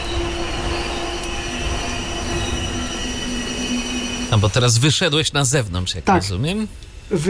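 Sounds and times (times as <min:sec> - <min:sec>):
railway wagons braking outdoors with wheels squealing: 0:00.0 - 0:05.6
speech: 0:04.3 - 0:07.2.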